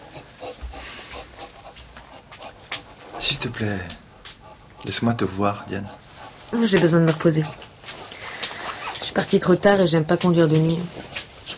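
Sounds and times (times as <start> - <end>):
pet dog panting softly: 0.0 - 9.0
speech: 3.2 - 4.0, 4.8 - 7.7, 9.2 - 11.5.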